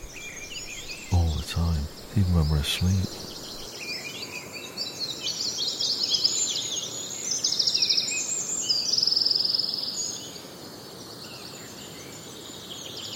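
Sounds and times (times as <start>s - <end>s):
Eurasian wren song in the dawn chorus in Kielder Forest: 0.0s - 3.7s
speech: 1.6s - 3.3s.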